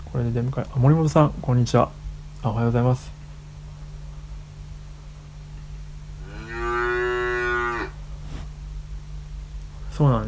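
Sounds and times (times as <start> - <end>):
constant low hum: 0.0 - 10.2
speech: 0.1 - 3.2, 10.0 - 10.2
cow mooing: 6.2 - 8.0.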